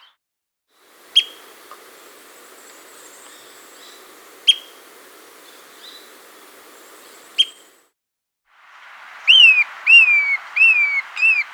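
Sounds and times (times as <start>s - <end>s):
Pale-edged Flycatcher calling in South America: 0.8s - 7.8s, 9.3s - 11.5s.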